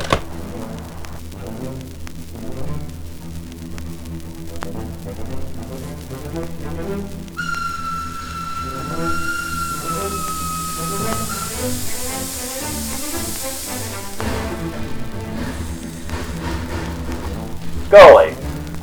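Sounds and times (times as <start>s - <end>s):
steady rumble in a train station: 0.0s - 18.8s
long sustained horn blare in a train station: 7.4s - 15.0s
rushing hiss of released air: 7.4s - 17.7s.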